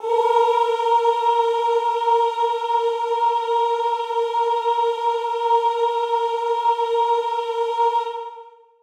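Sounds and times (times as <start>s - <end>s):
female chorus singing A#4: 0.0s - 8.8s.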